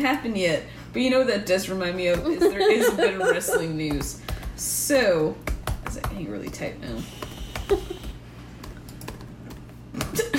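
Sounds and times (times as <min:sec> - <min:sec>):
speech: 0:00.0 - 0:08.0
laughter: 0:02.2 - 0:03.8
computer keyboard typing a search: 0:03.9 - 0:04.6, 0:05.4 - 0:09.6.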